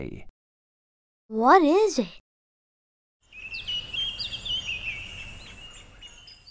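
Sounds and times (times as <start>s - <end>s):
speech: 0.0s - 0.3s, 1.3s - 2.2s
bird chirping: 3.2s - 6.4s.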